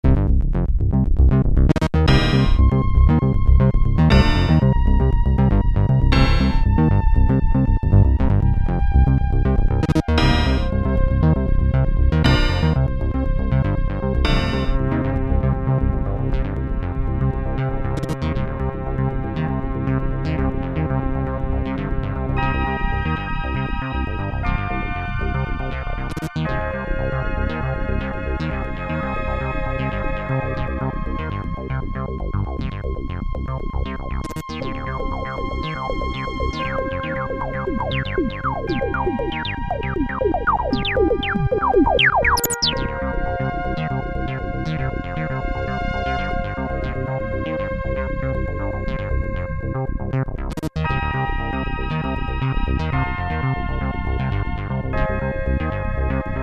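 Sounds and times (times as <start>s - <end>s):
DW8000 synthesizer: 1.0s - 56.4s.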